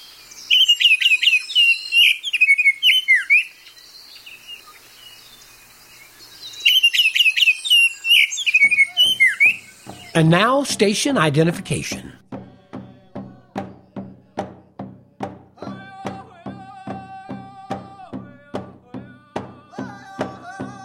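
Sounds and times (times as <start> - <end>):
Baltimore Oriole singing rich whistled notes: 0.0 - 10.9
speech: 10.2 - 12.3.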